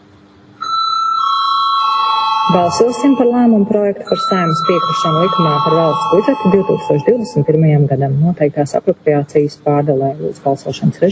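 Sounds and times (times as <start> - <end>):
electric voting bell ringing in parliament: 0.6 - 7.6
speech: 2.5 - 11.1.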